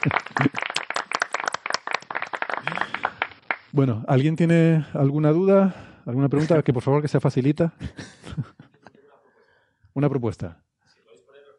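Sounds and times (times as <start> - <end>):
speech: 0.0 - 0.6, 3.7 - 8.5, 10.0 - 10.6
laughter: 0.0 - 0.8, 7.8 - 9.2
canned applause: 0.0 - 3.7.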